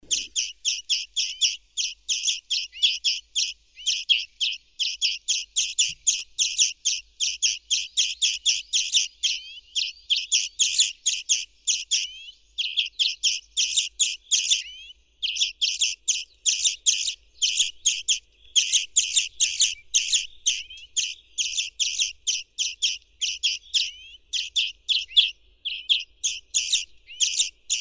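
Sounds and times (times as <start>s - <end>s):
common greenfinch Chloris chloris: 0.0s - 27.7s.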